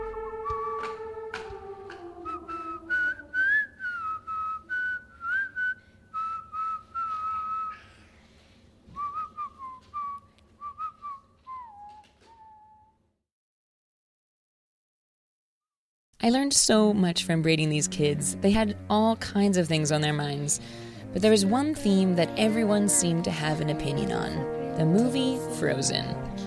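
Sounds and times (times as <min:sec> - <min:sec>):
person whistling a simple melody: 0:00.2 - 0:01.0, 0:02.3 - 0:07.9, 0:09.0 - 0:12.9
speech: 0:16.2 - 0:26.3.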